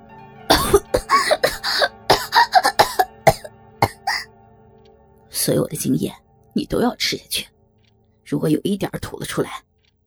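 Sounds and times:
violent harsh hacking coughing: 0.5 - 4.3
speech: 5.5 - 7.5, 8.3 - 9.7.

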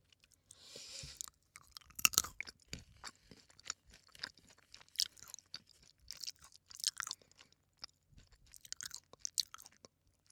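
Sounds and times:
person chewing an almond: 0.0 - 10.3.

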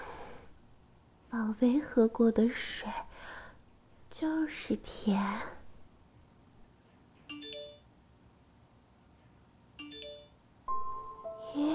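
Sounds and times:
speech: 1.3 - 3.1, 4.2 - 5.6
mobile phone ringing with a bright chiming melodic ringtone: 7.3 - 7.8, 9.8 - 11.7.

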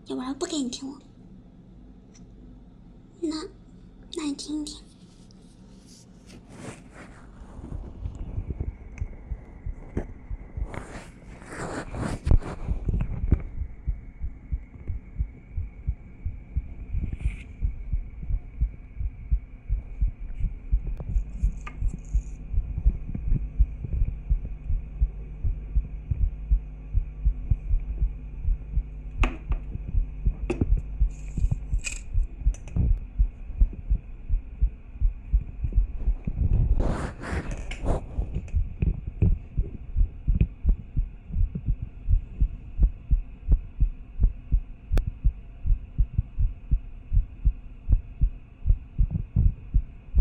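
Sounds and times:
faint hum: 0.0 - 50.1
speech: 0.1 - 1.1, 3.2 - 3.6, 4.2 - 4.9
scraping contact noises: 4.7 - 8.7, 9.8 - 13.5, 17.0 - 17.6, 36.3 - 38.5
rapid steady human heartbeat in low pulses: 7.3 - 50.1.

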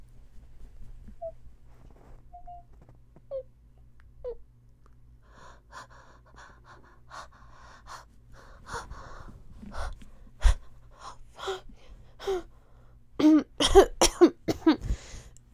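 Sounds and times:
gasping breaths: 5.2 - 12.8
person coughing in a coughing fit: 13.2 - 15.0.

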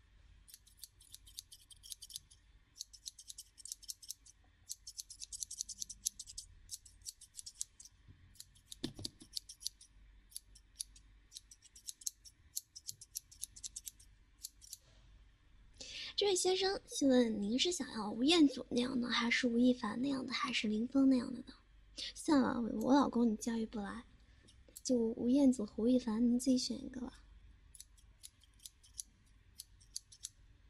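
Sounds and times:
scissors snipping during a haircut: 0.5 - 14.8, 27.8 - 30.4
speech: 16.2 - 21.5, 22.3 - 24.1, 24.9 - 27.2.

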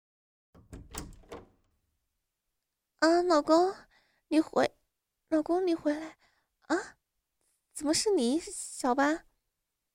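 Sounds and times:
firm knocking on a door: 0.6 - 1.6
speech: 3.0 - 7.0, 7.8 - 9.3.

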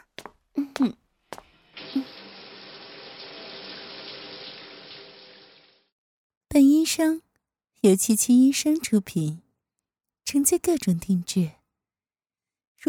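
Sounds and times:
speech: 0.6 - 1.0, 6.9 - 9.4, 10.3 - 11.6
water running into a bath: 1.5 - 5.9.

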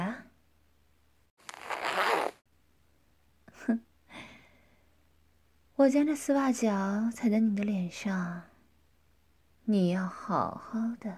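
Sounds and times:
boot zipper being unzipped: 1.4 - 2.4
speech: 3.7 - 3.9, 5.8 - 8.5, 9.7 - 11.1.

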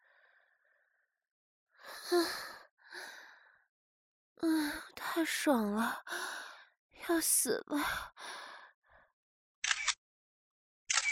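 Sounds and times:
speech: 2.1 - 2.4, 5.2 - 6.3, 7.1 - 8.3
camera shutter being pressed: 9.6 - 10.0, 10.9 - 11.1.

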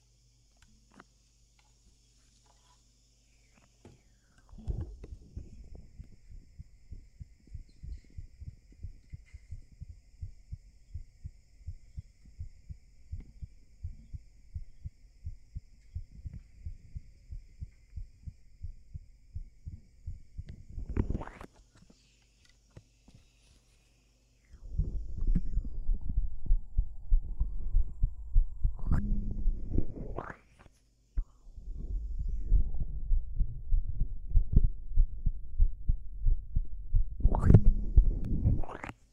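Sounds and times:
human heartbeat: 4.6 - 21.4, 24.6 - 30.2, 31.2 - 38.7.

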